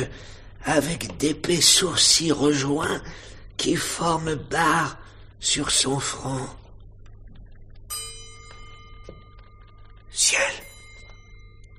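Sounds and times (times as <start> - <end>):
speech: 0.0 - 6.6, 10.2 - 10.7
faint low hum: 0.0 - 11.7
pendulum clock chiming in a house sealed shut for a century and a half: 7.9 - 11.7.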